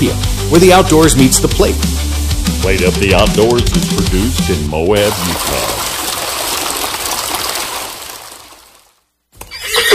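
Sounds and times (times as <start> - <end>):
speech: 0.0 - 5.8
horse neighing: 9.4 - 9.9.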